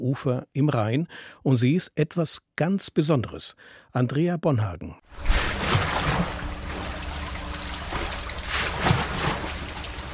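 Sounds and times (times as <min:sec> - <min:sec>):
speech: 0:00.1 - 0:06.3
rushing river water with a low rumble: 0:05.2 - 0:10.1
ship mill wheels turning and splashing through the current: 0:05.2 - 0:10.1.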